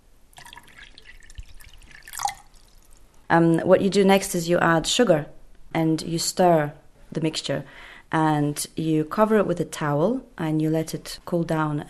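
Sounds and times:
cold water pouring into a bucket: 0.4s - 3.1s
speech: 3.3s - 11.8s.

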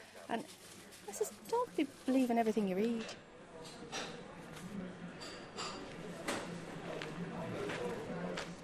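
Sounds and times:
murmur of indistinct voices in a shopping centre coffee shop: 0.0s - 8.6s
speech: 0.3s - 3.9s
cups and dishes clinking and clattering in a coffee shop: 3.0s - 4.2s, 5.1s - 6.4s.

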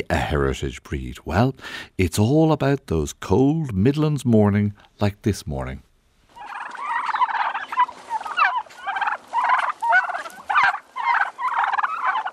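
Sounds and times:
speech: 0.0s - 5.9s
Black heritage turkeys gobbling: 6.3s - 12.3s.

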